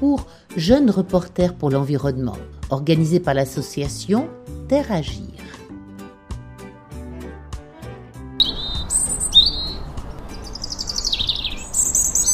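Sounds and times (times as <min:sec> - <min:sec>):
speech: 0:00.0 - 0:05.6
soft instrumental music: 0:00.0 - 0:12.3
outdoor birdsong with bright high chirps and warbling phrases: 0:08.4 - 0:12.3.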